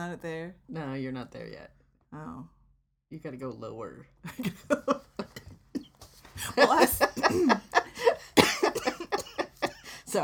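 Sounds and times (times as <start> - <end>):
speech: 0.0 - 5.1, 6.4 - 8.1
breathy laughter: 4.4 - 10.2
harsh repeated coughing: 5.8 - 10.2.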